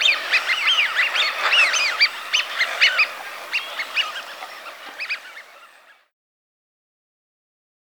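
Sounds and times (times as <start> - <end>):
Eurasian wigeon whistling: 0.0 - 4.4.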